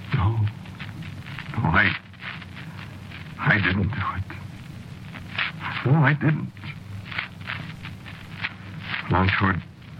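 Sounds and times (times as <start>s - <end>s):
colonel's boots stepping at a walking pace: 0.7s - 3.6s, 6.6s - 9.9s
speech: 1.6s - 2.0s, 3.6s - 4.3s, 5.8s - 6.6s, 9.1s - 9.7s.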